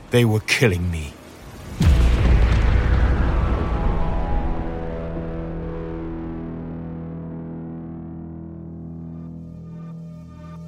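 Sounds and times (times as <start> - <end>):
speech: 0.1 - 1.2
spaceship auxiliary thruster exploding from a laser beam: 1.5 - 7.7.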